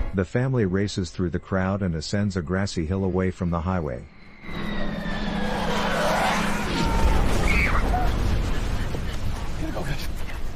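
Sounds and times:
speech: 0:00.2 - 0:04.6
aircraft engine drone: 0:04.0 - 0:09.4
falling whistle of dropping bombs: 0:04.1 - 0:08.2
bombs dropping and exploding over a highway: 0:06.2 - 0:10.5.

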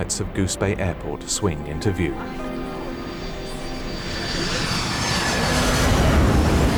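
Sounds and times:
speech: 0:00.0 - 0:02.6
large airplane engine roar on its landing roll at Goose Bay Airport: 0:01.4 - 0:06.7.

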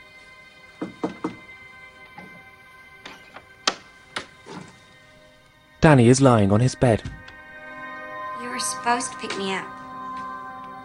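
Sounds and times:
faint knocks on a door in a hospital ward: 0:00.8 - 0:01.5
low hum: 0:01.6 - 0:10.8
speech: 0:05.8 - 0:07.2, 0:08.8 - 0:09.8.

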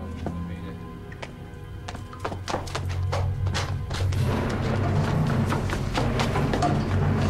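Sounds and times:
hurried footsteps running down wooden stairs: 0:01.9 - 0:07.2
steady low rumble: 0:03.3 - 0:07.2.

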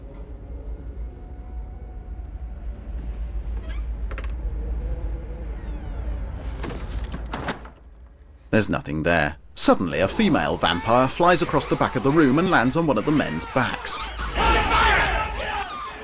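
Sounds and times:
low rumble: 0:00.0 - 0:16.0
door pulled slowly open by its handle: 0:03.5 - 0:04.5, 0:05.2 - 0:07.9
speech: 0:08.6 - 0:14.2
laughter: 0:10.0 - 0:16.0.

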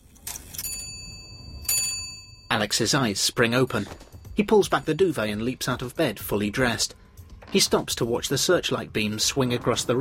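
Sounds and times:
ornate gold-decorated clock chiming: 0:00.6 - 0:02.8
speech: 0:02.5 - 0:10.0.

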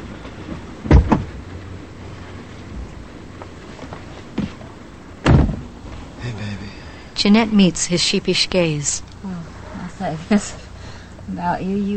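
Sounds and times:
steady low outdoor rumble on a dark side street: 0:00.0 - 0:11.9
black sedan door clunking open with double thud: 0:00.4 - 0:01.5, 0:03.8 - 0:06.2
black sedan door closing with a solid slam: 0:00.5 - 0:01.4, 0:05.2 - 0:06.0
speech: 0:07.2 - 0:09.4, 0:10.0 - 0:10.6, 0:11.3 - 0:11.9.

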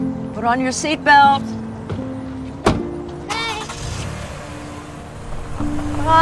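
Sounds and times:
speech: 0:00.4 - 0:01.6
car engine idling: 0:00.4 - 0:06.2
sharp thunk: 0:02.6 - 0:02.9.

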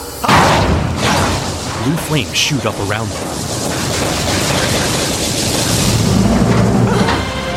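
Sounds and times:
mechanical press slamming dough in pie-making machinery: 0:00.2 - 0:01.6
sustained rushing clattering machinery noise: 0:00.3 - 0:07.5
speech: 0:01.9 - 0:04.9.

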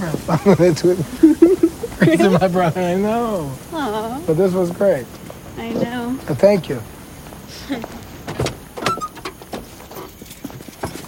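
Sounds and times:
laughter: 0:00.0 - 0:04.0, 0:07.5 - 0:08.0
speech: 0:00.0 - 0:07.0, 0:07.6 - 0:08.0
shuffling and rustling as people climb into a truck cab: 0:00.0 - 0:11.0
truck doors opening and shutting: 0:08.1 - 0:10.2.

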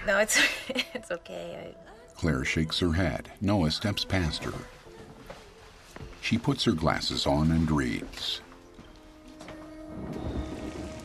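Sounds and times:
speech: 0:00.0 - 0:04.8, 0:06.2 - 0:08.5
heavy rain pouring at night: 0:09.8 - 0:11.0.

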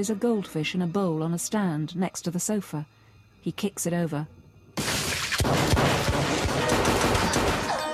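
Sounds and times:
speech: 0:00.0 - 0:06.0
pistol gunfire in a close-range shootout: 0:04.8 - 0:07.9.

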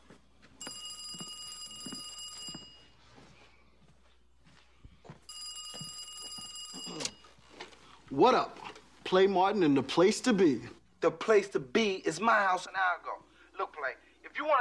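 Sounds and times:
telephone bell ringing in a house: 0:00.6 - 0:03.1, 0:05.3 - 0:07.6
speech: 0:08.2 - 0:13.2, 0:14.4 - 0:14.6.

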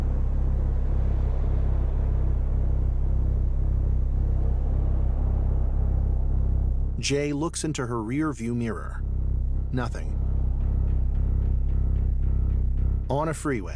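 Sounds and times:
car engine rumble heard from inside a car driving out of a parking structure: 0:00.0 - 0:13.7
speech: 0:07.0 - 0:09.1, 0:09.7 - 0:10.2, 0:13.1 - 0:13.7.

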